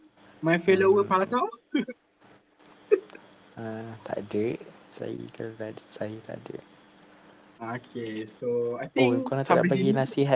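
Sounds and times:
speech: 0.4s - 2.0s, 3.6s - 6.7s, 7.6s - 10.3s
laughter: 7.8s - 10.1s
person hiccuping: 9.0s - 10.0s.

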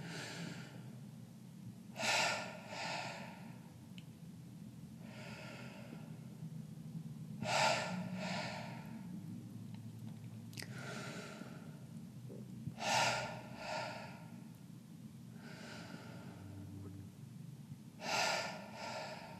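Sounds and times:
deep rhythmic belly breathing, inhaling and exhaling: 0.0s - 1.2s, 1.8s - 3.8s, 4.9s - 6.5s, 7.4s - 9.4s, 10.5s - 14.6s, 15.3s - 17.2s, 18.0s - 19.3s
low hum: 0.0s - 19.3s.

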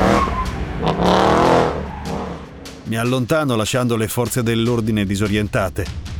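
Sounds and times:
car tires squealing: 0.0s - 2.6s
car engine revving hard and pulling away: 0.0s - 2.8s
speech: 2.9s - 6.1s.

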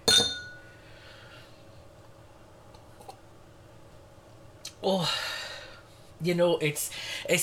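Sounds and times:
glass tapped against another glass: 0.0s - 0.6s
glass ringing tone: 0.0s - 0.7s
speech: 4.8s - 5.3s, 6.2s - 7.4s.

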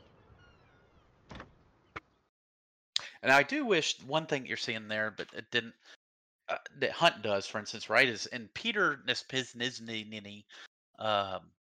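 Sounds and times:
door clunks: 1.3s - 1.6s
speech: 3.2s - 11.6s.

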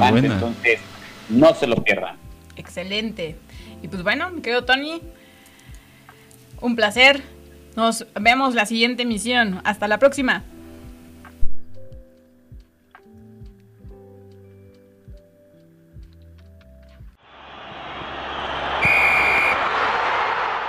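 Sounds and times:
speech: 0.0s - 5.2s, 6.6s - 10.5s
loud stadium crowd roar: 17.2s - 20.6s
short shrill referee's whistle blast ending a match: 18.4s - 19.9s.

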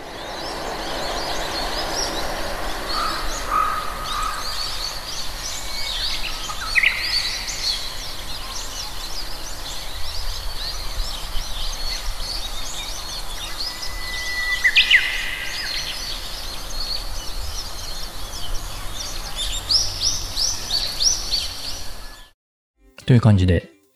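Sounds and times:
train such as a Shinkansen passing on a nearby railway bridge: 0.0s - 5.3s
Japanese bush warbler singing its spring hō-hokekyo phrase: 0.0s - 22.0s
speech: 23.1s - 23.8s.

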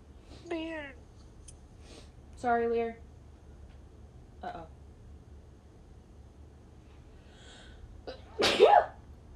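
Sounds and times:
speech: 2.4s - 3.0s, 4.4s - 4.8s
sneeze: 8.1s - 9.0s.

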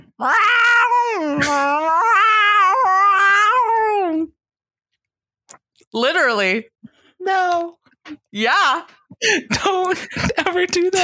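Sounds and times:
person imitating a cat's scream: 0.1s - 4.3s
speech: 0.2s - 0.5s, 6.0s - 11.0s.

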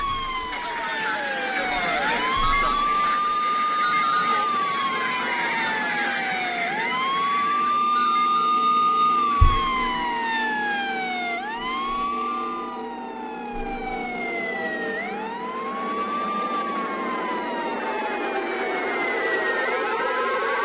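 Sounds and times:
low rumble of traffic: 0.0s - 3.3s, 9.3s - 10.2s
emergency vehicle siren wailing: 0.0s - 20.6s.

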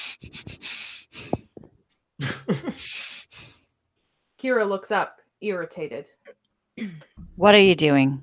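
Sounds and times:
person doing rapid bellows breathing through the nose: 0.0s - 4.4s
speech: 4.4s - 6.2s, 6.8s - 8.2s.

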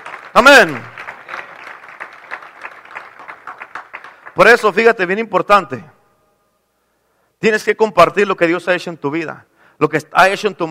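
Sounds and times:
audience applause: 0.0s - 4.4s
speech: 0.4s - 0.9s, 4.4s - 5.9s, 7.4s - 10.6s.

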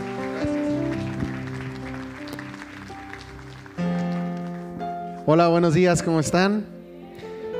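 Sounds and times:
crowd applause: 0.0s - 4.8s
speech: 5.3s - 6.7s.

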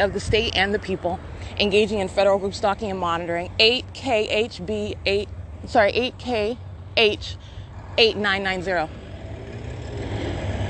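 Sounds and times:
speech: 0.0s - 9.0s
large truck passing on the road: 6.7s - 10.6s.

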